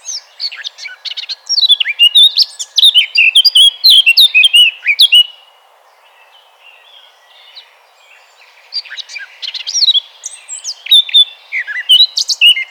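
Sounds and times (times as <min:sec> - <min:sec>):
Eurasian blackcap singing a rich fluting warble: 0:00.0 - 0:05.4, 0:08.8 - 0:12.6.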